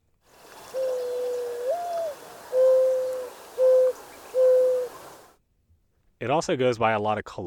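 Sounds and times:
mourning dove cooing: 0.4s - 5.3s
speech: 6.2s - 7.4s.

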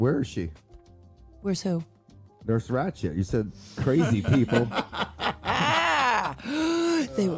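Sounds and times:
speech: 0.0s - 0.6s, 1.4s - 5.1s, 7.2s - 7.3s
laughter: 3.8s - 7.3s
person gasping into a drawn-out moan-like breath: 6.3s - 7.2s.

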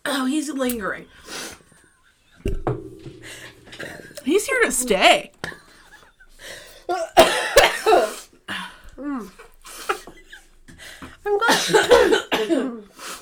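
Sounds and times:
speech: 0.2s - 1.6s, 4.2s - 5.4s, 11.5s - 12.9s
harsh hacking coughs after eating spicy food: 6.5s - 8.2s, 11.5s - 12.8s.

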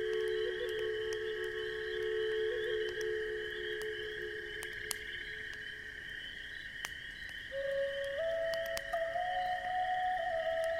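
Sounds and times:
breathy flute holding long low notes: 0.0s - 5.0s, 7.5s - 10.7s
campfire crackling and popping: 0.0s - 10.7s.

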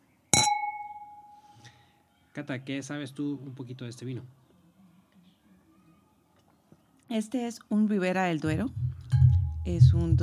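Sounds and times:
wine glasses clinking in a toast with Ribera del Duero tempranillo crianza wine: 0.4s - 1.5s
speech: 2.4s - 4.4s, 7.1s - 8.8s, 9.6s - 10.2s.

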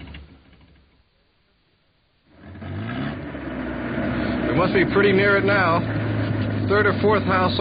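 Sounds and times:
car engine revving and accelerating: 2.3s - 7.6s
speech: 4.6s - 6.0s, 6.7s - 7.6s.

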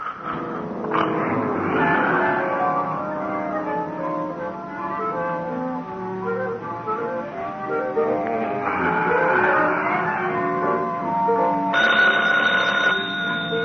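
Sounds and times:
dense busy tonal background: 0.1s - 13.6s
telephone ringing: 11.3s - 13.6s.

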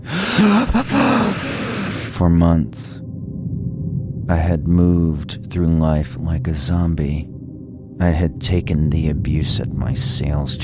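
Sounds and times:
deep fearful gasp from a man waking up: 0.0s - 2.2s
speech: 0.4s - 1.5s, 2.2s - 3.0s, 4.3s - 7.3s, 8.0s - 10.6s.

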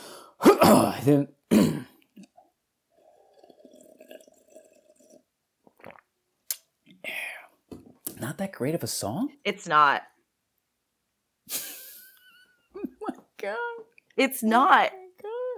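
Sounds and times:
throat clearing: 0.4s - 2.3s
speech: 0.7s - 1.8s, 8.6s - 10.1s, 13.4s - 15.0s
sipping water from a glass: 2.0s - 8.2s
swallowing clicks: 3.1s - 7.1s.

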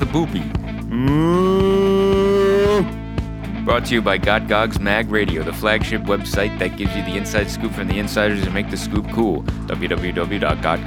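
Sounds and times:
speech: 0.1s - 1.7s, 3.8s - 10.8s
cow mooing: 0.9s - 3.0s.

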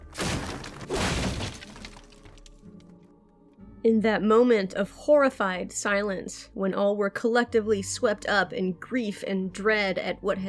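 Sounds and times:
coffin debris splintering and breaking: 0.0s - 2.9s
heavy coffin crashing onto a road after a pallbearer slips: 0.0s - 2.9s
speech: 3.8s - 10.4s.

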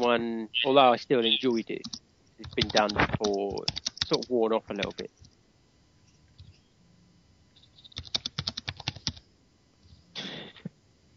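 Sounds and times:
speech: 0.0s - 5.2s
loud typing on a computer keyboard: 1.8s - 5.3s, 7.8s - 9.2s.

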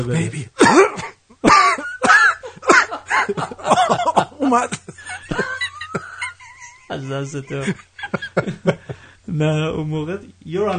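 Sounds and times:
speech: 0.0s - 0.8s, 3.3s - 4.8s, 7.0s - 10.7s
harsh coughing from a nervous person: 0.6s - 6.3s
laughter: 1.6s - 9.0s.

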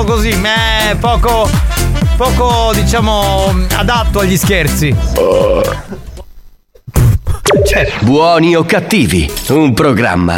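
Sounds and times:
speech: 0.0s - 6.1s, 7.5s - 10.3s
loud drawn-out burp with a rough croaking tone: 5.2s - 6.0s.

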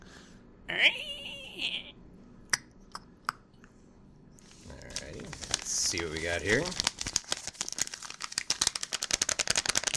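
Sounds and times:
speech: 0.7s - 1.0s, 6.0s - 6.9s
large sheet of paper being unfolded, crinkling: 4.5s - 9.9s.

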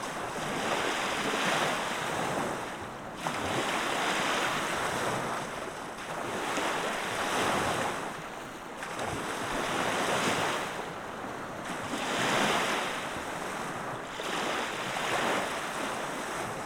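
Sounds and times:
gentle waves rolling onto a beach: 0.0s - 16.6s
light breeze: 0.0s - 16.6s.

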